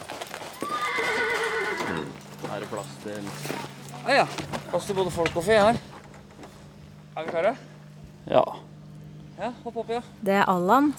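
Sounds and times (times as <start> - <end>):
horse neighing: 0.5 - 2.3
speech: 2.7 - 5.9, 7.2 - 8.6, 9.4 - 10.9.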